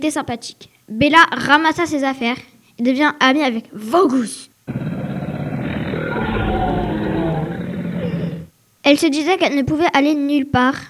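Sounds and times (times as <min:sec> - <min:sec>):
speech: 0:00.0 - 0:04.8, 0:08.9 - 0:10.8
deep gritty dragon roar: 0:04.7 - 0:08.5.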